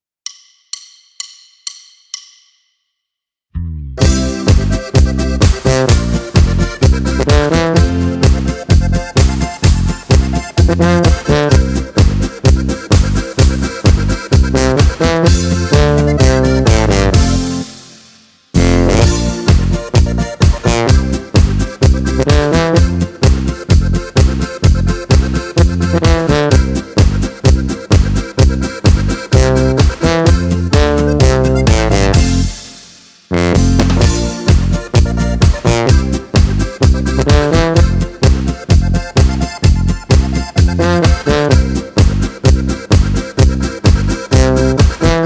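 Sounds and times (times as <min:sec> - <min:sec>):
lead instrument: 0:03.6 - 0:45.2.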